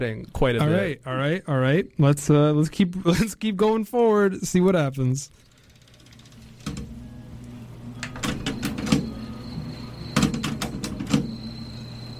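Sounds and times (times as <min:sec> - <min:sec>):
speech: 0:00.0 - 0:05.5
tape player mechanism clicks and clunks: 0:05.9 - 0:09.2.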